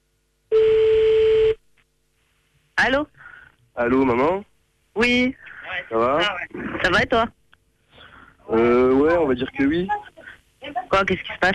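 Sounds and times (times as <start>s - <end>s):
telephone ringing tone: 0.5s - 1.6s
speech: 2.8s - 7.4s, 8.5s - 11.5s.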